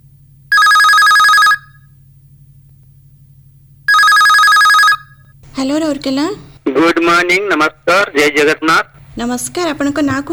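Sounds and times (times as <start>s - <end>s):
low steady hum: 0.0s - 10.3s
telephone ringing with an incoming call on a radio call-in show: 0.5s - 1.8s, 3.9s - 5.2s
speech: 5.6s - 10.3s.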